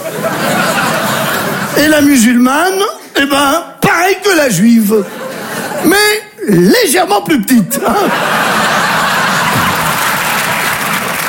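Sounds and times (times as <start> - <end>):
laughter: 0.0 - 1.8, 5.0 - 6.2, 7.7 - 11.2
speech: 1.8 - 5.2, 5.8 - 8.5
live audience applause: 8.4 - 11.2.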